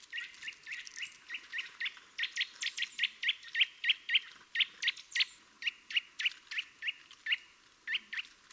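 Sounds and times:
Eurasian nuthatch Sitta europaea calling in short clear piping notes: 0.1s - 8.4s.

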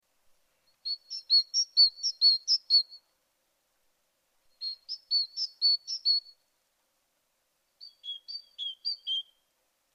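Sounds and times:
Great tit Parus major giving quick high chirps: 0.6s - 3.1s, 4.5s - 6.4s, 7.8s - 9.5s.

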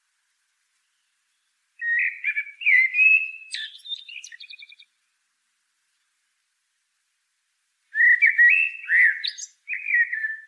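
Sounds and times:
common blackbird Turdus merula singing: 0.9s - 5.0s, 7.9s - 10.4s.

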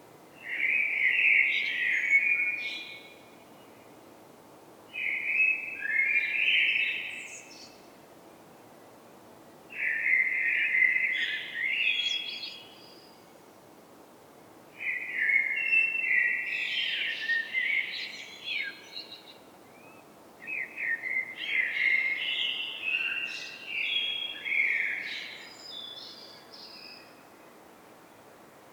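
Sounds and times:
Eurasian blackbird song: 0.4s - 3.8s, 5.0s - 7.9s, 9.7s - 13.3s, 14.8s - 27.2s.

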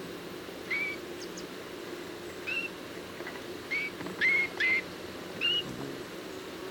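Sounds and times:
Eurasian bullfinch Pyrrhula pyrrhula uttering gentle piped whistles: 0.7s - 1.4s, 3.7s - 4.8s, 5.4s - 5.7s.

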